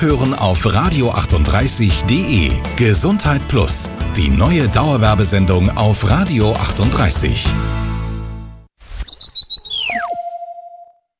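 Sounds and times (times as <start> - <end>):
speech: 0.0 - 7.8
birds chirping: 8.9 - 11.0
falling whistle: 9.0 - 11.0.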